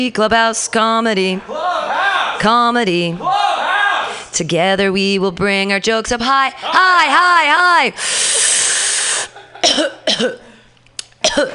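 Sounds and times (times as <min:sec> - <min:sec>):
speech: 0:00.0 - 0:01.8, 0:02.4 - 0:03.5, 0:04.4 - 0:08.8, 0:09.7 - 0:10.4, 0:11.3 - 0:11.5
long breathy exhale: 0:08.0 - 0:09.4
harsh coughs: 0:09.5 - 0:11.5.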